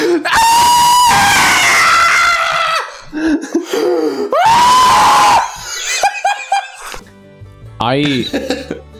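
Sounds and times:
long piercing human screams: 0.1s - 3.1s, 4.2s - 5.6s
laughter-like sounds: 5.6s - 7.0s, 8.1s - 8.8s.

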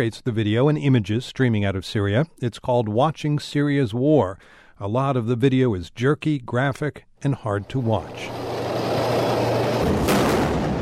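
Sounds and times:
speech: 0.0s - 8.5s
gunfire during an attack on a military convoy: 7.8s - 10.8s
sharp bright blast: 8.0s - 10.8s.

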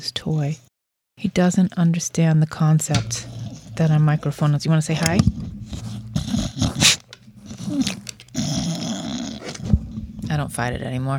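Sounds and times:
speech: 0.0s - 7.0s, 10.3s - 11.1s
dog growling: 3.1s - 4.4s, 5.3s - 10.2s.

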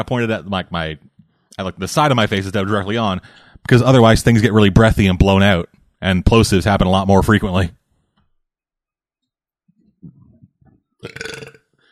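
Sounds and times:
speech: 0.0s - 1.0s, 1.6s - 7.8s, 11.0s - 11.5s
long raspy burp: 11.0s - 11.7s.

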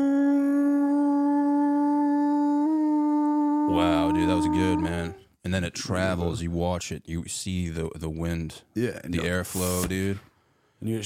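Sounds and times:
voice imitating a whale call with a tonal moan: 0.0s - 5.3s
speech: 3.7s - 11.0s.

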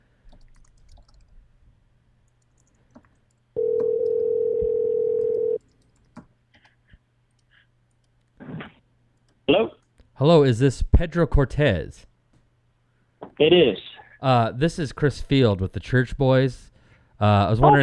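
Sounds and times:
ringback tone from an outgoing phone call: 3.6s - 5.6s
speech: 9.6s - 12.1s, 13.4s - 17.8s.

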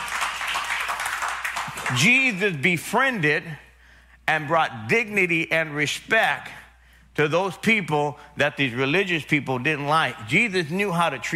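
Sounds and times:
audience clapping: 0.0s - 2.2s
speech: 1.9s - 3.6s, 4.3s - 6.6s, 7.2s - 11.3s.

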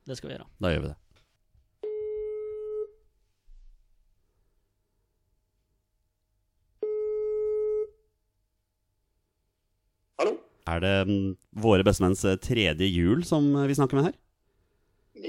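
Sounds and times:
speech: 0.1s - 1.0s, 10.8s - 14.2s
electronic telephone ringback tone on a phone line during outgoing call: 1.8s - 3.0s, 6.8s - 8.0s.

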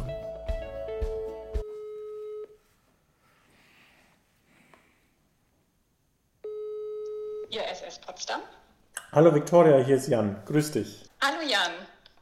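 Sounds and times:
telephone ringback tones on the line: 1.6s - 2.6s, 6.4s - 7.5s
speech: 7.5s - 11.8s.

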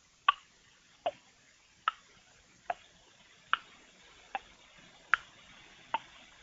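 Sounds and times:
clock ticking: 1.9s - 6.4s.

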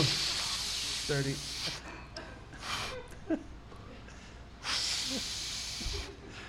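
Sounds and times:
person sniffing the cork of a 1986 Sauvignon wine: 0.0s - 1.8s, 4.6s - 6.2s
speech: 1.1s - 1.9s, 3.3s - 3.5s.

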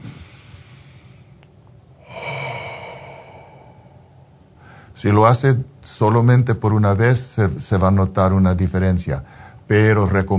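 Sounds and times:
deep breath in and out: 0.0s - 5.0s
speech: 5.0s - 10.3s.

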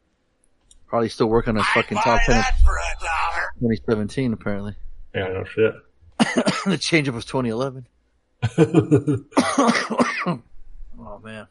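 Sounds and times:
speech: 0.9s - 11.4s
laughter: 1.2s - 2.6s, 5.2s - 5.8s, 8.4s - 9.4s
person coughing harshly: 5.2s - 6.8s, 8.4s - 10.4s.

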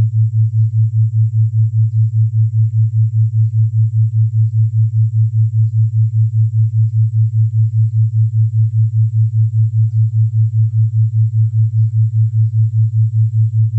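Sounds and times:
low binaural tone near 110 Hz pulsing at 5 Hz: 0.0s - 13.7s.

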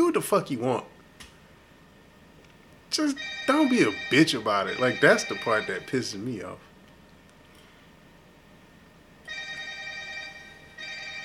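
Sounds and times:
speech: 0.2s - 1.0s, 2.9s - 6.7s
mobile phone ringing with a bright multi-tone ringtone: 3.1s - 6.1s, 9.3s - 11.2s.

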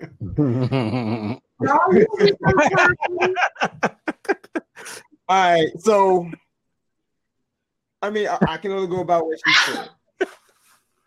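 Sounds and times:
speech: 0.4s - 3.8s, 4.8s - 6.4s, 8.0s - 10.0s
laughter: 0.4s - 6.4s, 8.1s - 10.4s
single sharp sneeze with a breathy tail: 9.5s - 9.9s.

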